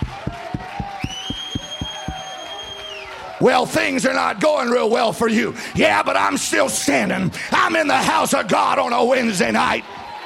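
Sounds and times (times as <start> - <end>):
crowd clapping together in a steady quick beat: 0.0 - 3.6
speech: 3.4 - 10.0.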